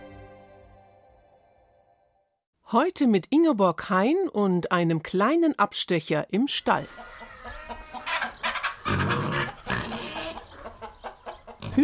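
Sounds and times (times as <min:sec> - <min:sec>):
speech: 0:02.7 - 0:07.1
chickens clucking and squawking in a barn: 0:06.8 - 0:11.8.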